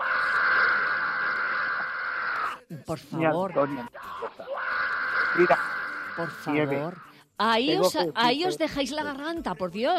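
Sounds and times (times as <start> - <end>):
group of people screaming loudly: 0.0 - 2.6, 3.4 - 7.1
speech: 2.8 - 4.4, 5.4 - 9.9.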